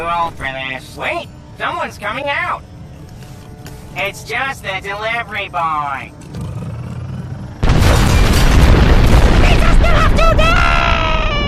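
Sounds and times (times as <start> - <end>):
speech: 0.0 - 2.8, 3.9 - 6.2, 9.9 - 10.6
dense sustained roar of rumbling debris: 7.6 - 11.3
loud explosion in a restaurant district: 7.6 - 11.4.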